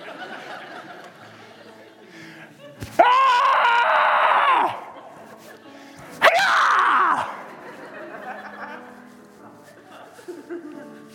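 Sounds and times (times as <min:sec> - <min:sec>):
laughter: 0:00.0 - 0:03.0, 0:04.5 - 0:05.8, 0:06.9 - 0:11.1
man screaming imitating a startled shriek: 0:03.0 - 0:04.9, 0:06.2 - 0:07.4.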